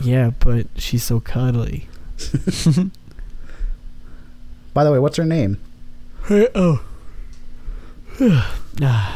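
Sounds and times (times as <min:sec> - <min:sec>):
speech: 0:00.0 - 0:03.0, 0:04.8 - 0:06.9, 0:08.1 - 0:09.1
groaning breath: 0:06.8 - 0:09.1
person yawning: 0:08.1 - 0:09.1.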